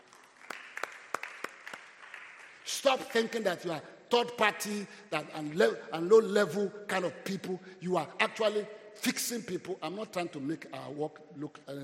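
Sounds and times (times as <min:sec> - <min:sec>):
scattered audience clapping at a church talk to pastors: 0:00.0 - 0:03.4
speech: 0:02.7 - 0:11.8.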